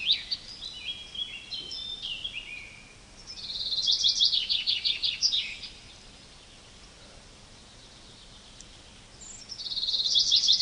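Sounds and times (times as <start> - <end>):
common chaffinch Fringilla coelebs singing: 0.0 - 10.6.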